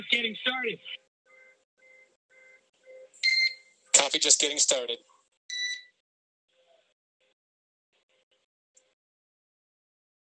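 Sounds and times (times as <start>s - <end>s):
speech: 0.0s - 1.0s, 4.0s - 5.1s
neighbor's electronic alarm beeping: 1.3s - 3.8s, 5.5s - 5.9s.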